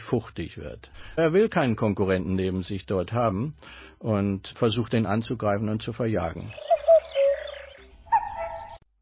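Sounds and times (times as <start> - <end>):
speech: 0.1 - 6.7
common cuckoo calling: 6.4 - 8.8.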